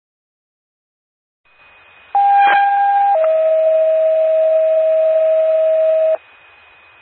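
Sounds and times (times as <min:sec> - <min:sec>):
two-tone emergency dispatch pager alert for an ambulance call: 0:02.2 - 0:06.2.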